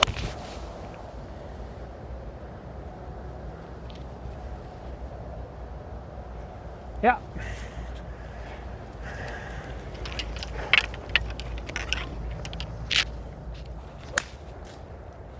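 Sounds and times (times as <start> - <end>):
steady outdoor wind: 0.0 - 15.3
speech: 7.0 - 7.6
golf club striking a ball: 9.0 - 15.0.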